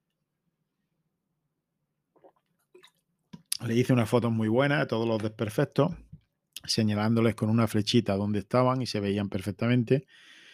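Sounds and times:
person sipping and gulping water: 0:02.1 - 0:03.6
speech: 0:03.6 - 0:10.3.

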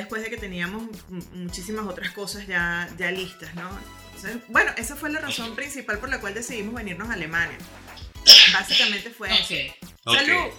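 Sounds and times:
speech: 0:00.1 - 0:10.5
sharp sneeze: 0:08.3 - 0:08.9.

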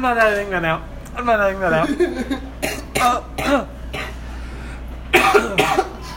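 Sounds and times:
speech: 0:00.0 - 0:03.8
coughing: 0:01.7 - 0:04.3, 0:05.1 - 0:06.1.

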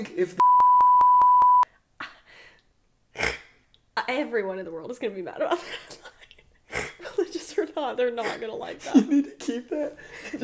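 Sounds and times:
speech: 0:00.0 - 0:00.6, 0:04.0 - 0:06.0, 0:07.6 - 0:10.4
loud steady censor beep: 0:00.4 - 0:01.7.

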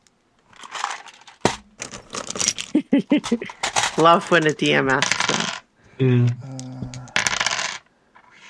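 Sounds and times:
handful of six-sided dice clattering during a tabletop game: 0:00.6 - 0:05.6, 0:06.6 - 0:07.9
speech: 0:03.0 - 0:06.6.

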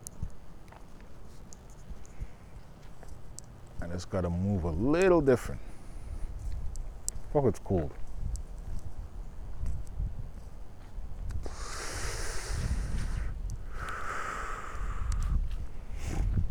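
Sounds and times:
speech: 0:03.8 - 0:05.7, 0:07.3 - 0:08.0
wind buffeting microphone outdoors on a cold day: 0:03.8 - 0:16.4.

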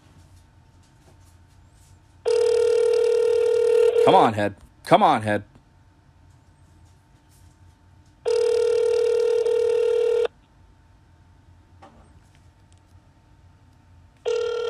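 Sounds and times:
telephone ringback tone before voicemail: 0:02.3 - 0:04.2, 0:08.3 - 0:10.3, 0:14.3 - 0:14.6
speech: 0:04.0 - 0:05.5.

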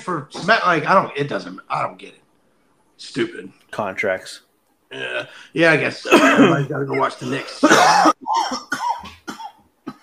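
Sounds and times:
speech: 0:00.0 - 0:02.2, 0:03.0 - 0:08.8
person coughing harshly: 0:06.1 - 0:06.6, 0:07.2 - 0:10.0.

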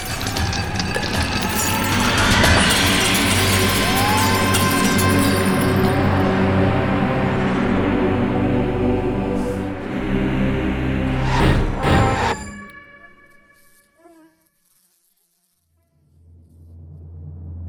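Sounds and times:
window glass shattering: 0:00.0 - 0:06.2
steady low drone: 0:01.9 - 0:12.8.

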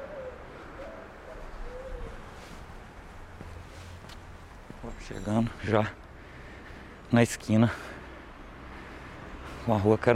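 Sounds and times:
pigeons cooing on a city street corner: 0:00.0 - 0:02.4
steady street noise: 0:00.0 - 0:10.1
speech: 0:04.8 - 0:06.0, 0:07.1 - 0:07.9, 0:09.6 - 0:10.1.

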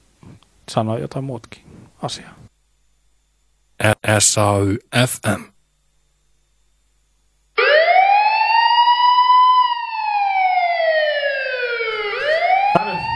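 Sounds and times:
speech: 0:00.7 - 0:02.4, 0:03.8 - 0:05.5
alarm siren wailing: 0:07.6 - 0:13.1.

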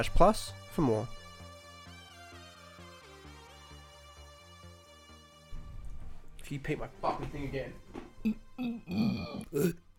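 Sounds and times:
speech: 0:00.0 - 0:01.2, 0:06.5 - 0:09.8
person burping throaty voiced burps: 0:08.2 - 0:09.9.

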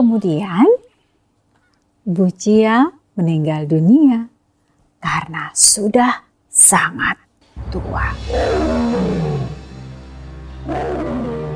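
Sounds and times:
speech: 0:00.0 - 0:00.8, 0:02.1 - 0:04.3, 0:05.0 - 0:09.3
tiger roaring inside a house in a village: 0:08.0 - 0:09.8, 0:10.6 - 0:11.5.

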